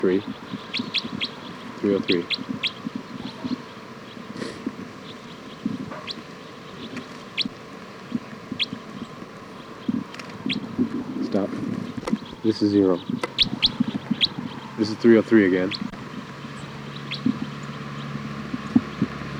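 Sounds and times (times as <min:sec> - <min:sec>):
speech: 0:00.0 - 0:02.8, 0:12.5 - 0:13.3, 0:14.8 - 0:15.9
birds chirping: 0:00.0 - 0:19.3.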